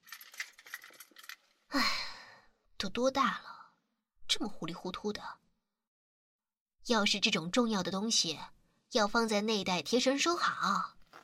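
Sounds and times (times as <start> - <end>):
bunch of house keys jangling: 0.0 - 1.5
speech: 2.8 - 3.5, 4.3 - 5.4, 6.9 - 11.0
soft handling sounds: 11.0 - 11.2.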